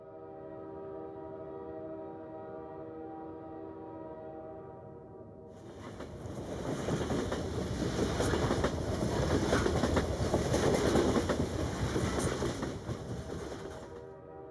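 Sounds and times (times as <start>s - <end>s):
train rolling along rails with low rumble: 5.6s - 14.2s.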